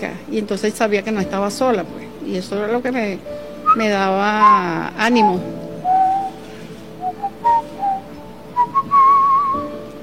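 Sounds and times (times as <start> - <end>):
speech: 0.0 - 5.6
person whistling a tune: 4.4 - 6.4, 7.0 - 9.7.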